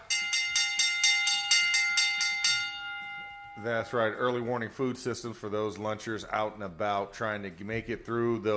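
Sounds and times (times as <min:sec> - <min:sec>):
bright metallic bell ringing: 0:00.0 - 0:04.5
speech: 0:03.6 - 0:08.5.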